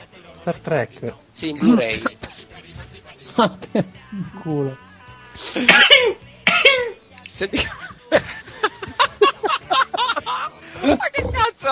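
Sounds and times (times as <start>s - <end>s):
speech: 0.4s - 2.2s, 3.4s - 4.8s, 5.4s - 6.2s, 7.4s - 8.3s, 10.4s - 11.7s
person laughing: 1.6s - 2.5s, 7.6s - 11.3s
stifled sneezes: 5.5s - 7.0s.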